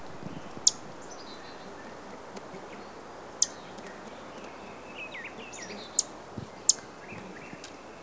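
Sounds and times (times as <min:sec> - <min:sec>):
pine warbler singing: 0:00.0 - 0:08.0.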